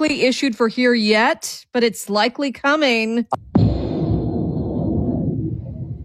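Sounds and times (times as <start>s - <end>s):
speech: 0.0s - 3.7s
thunder rumbling from a passing storm: 3.4s - 6.0s.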